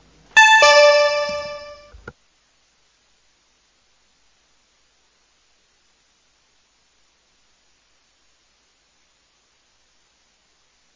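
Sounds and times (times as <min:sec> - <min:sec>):
electronic voting signal in a council chamber: 0:00.4 - 0:01.9.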